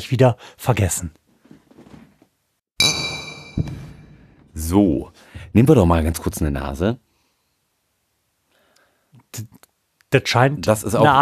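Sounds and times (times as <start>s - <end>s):
speech: 0.0s - 1.2s, 4.6s - 7.0s, 9.3s - 11.1s
glasses clinking: 2.8s - 4.0s.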